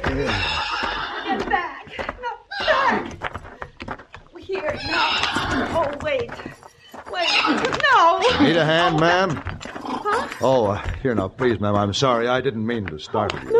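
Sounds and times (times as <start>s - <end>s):
horse whinnying in a yard: 0.0s - 1.4s, 2.5s - 3.2s, 4.7s - 6.0s, 7.1s - 9.0s, 9.6s - 10.4s
hooves clopping and shuffling on hard ground: 0.0s - 13.5s
speech: 0.2s - 0.6s, 8.2s - 9.5s, 10.4s - 13.5s.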